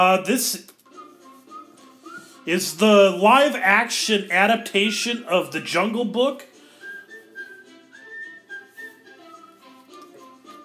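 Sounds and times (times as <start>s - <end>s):
speech: 0.0s - 0.8s, 2.4s - 6.5s
soft musical backing: 0.0s - 10.6s
lively whistled melody: 0.8s - 3.1s, 6.5s - 10.6s.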